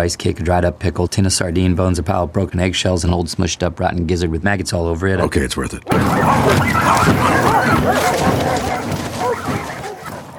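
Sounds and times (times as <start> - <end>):
speech: 0.0 - 8.8
several dogs barking and yipping: 5.9 - 10.3.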